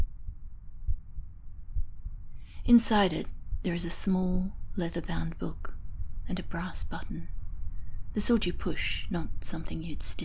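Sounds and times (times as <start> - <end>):
soft droning hum: 0.0 - 10.2
low heartbeat thumping: 0.8 - 2.1
speech: 2.7 - 7.4, 8.2 - 10.2.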